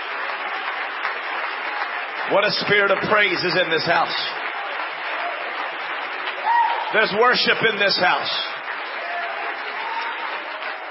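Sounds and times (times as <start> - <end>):
audience clapping hands in praise to God: 0.0 - 10.8
speech: 2.3 - 4.4, 6.9 - 8.5.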